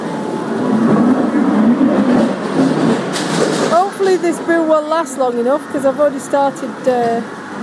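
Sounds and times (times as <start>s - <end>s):
ride cars being shunted forward along a track: 0.0s - 7.6s
low knocks and rattles: 2.2s - 4.6s
speech: 4.2s - 7.4s.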